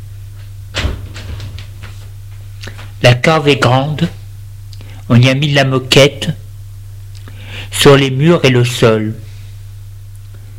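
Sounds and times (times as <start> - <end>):
steady low hum: 0.0 - 10.5
cellar door thump and creak: 0.7 - 2.0
speech: 3.0 - 4.2, 5.1 - 6.4, 7.7 - 9.2.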